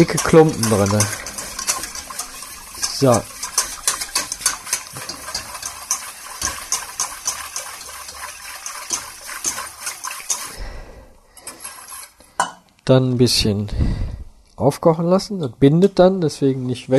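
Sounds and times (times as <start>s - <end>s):
speech: 0.0s - 1.2s, 3.0s - 3.3s, 12.9s - 16.9s
spoon stirring a sauce thickened with flour in a pot: 0.0s - 10.6s.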